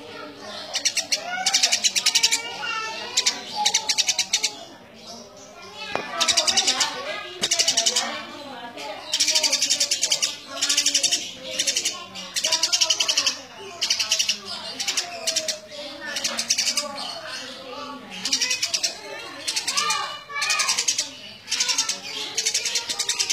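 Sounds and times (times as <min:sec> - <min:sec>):
Eurasian tree sparrow giving buzzy chirps and chattering: 0:00.0 - 0:23.3.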